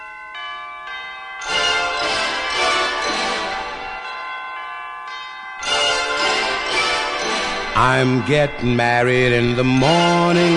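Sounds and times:
bright bell-like chimes: 0:00.0 - 0:10.5
up-tempo orchestral song intro with full band harmonies: 0:01.5 - 0:03.8, 0:05.7 - 0:07.9
speech: 0:07.8 - 0:10.5.

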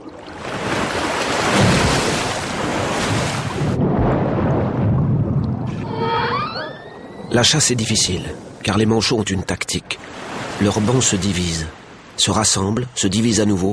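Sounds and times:
rushing churning water: 0:00.0 - 0:12.6
orcas hunting penguins giving whistle-like calls: 0:05.8 - 0:07.7
speech: 0:07.3 - 0:10.0, 0:10.6 - 0:13.7.

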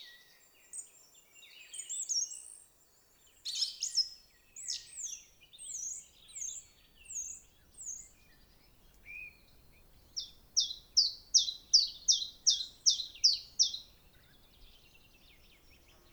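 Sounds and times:
wild birds singing trills and chirps in a quiet valley: 0:05.9 - 0:16.1.

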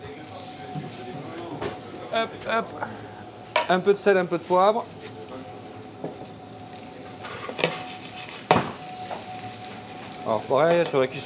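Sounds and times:
butter foaming and sizzling in a pan: 0:00.0 - 0:11.2
speech: 0:02.1 - 0:05.0, 0:10.3 - 0:11.2.

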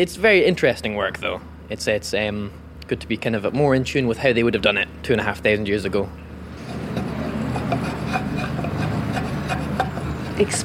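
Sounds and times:
speech: 0:00.0 - 0:06.2, 0:10.4 - 0:10.6
blade shaving wood to shape a hammer handle: 0:06.6 - 0:10.6.

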